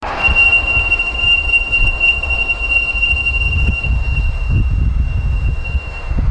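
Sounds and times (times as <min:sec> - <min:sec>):
nautical boatswain's whistle: 0:00.0 - 0:06.2.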